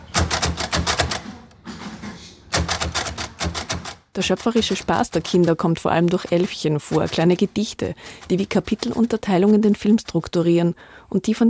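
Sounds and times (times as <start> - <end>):
braille typewriter mechanical keystrokes: 0.0 - 1.4, 2.5 - 10.1
speech: 4.2 - 11.4.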